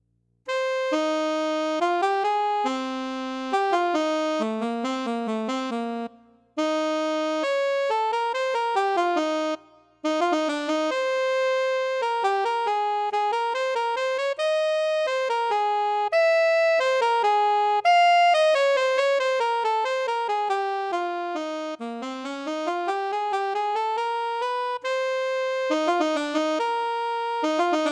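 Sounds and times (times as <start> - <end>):
lyrical alto saxophone: 0.5 - 27.9.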